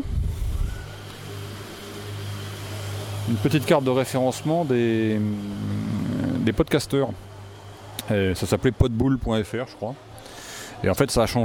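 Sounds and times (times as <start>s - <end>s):
scooter engine droning past: 0.8s - 6.7s
speech: 3.3s - 5.8s, 6.4s - 7.3s, 8.0s - 10.1s, 10.8s - 11.4s.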